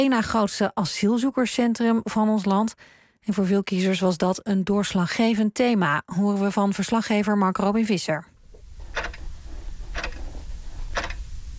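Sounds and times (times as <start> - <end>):
speech: 0.0 - 8.3
clock ticking at home: 8.6 - 11.4.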